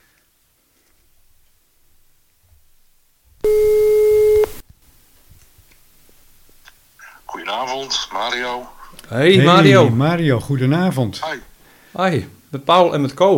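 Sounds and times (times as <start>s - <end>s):
telephone ringback tone as a call is placed: 3.5s - 4.5s
speech: 7.8s - 13.3s.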